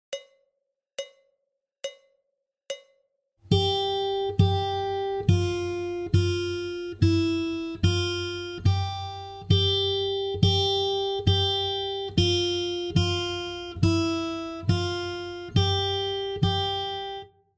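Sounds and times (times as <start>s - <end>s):
guitar warm up in high G: 3.5s - 17.3s.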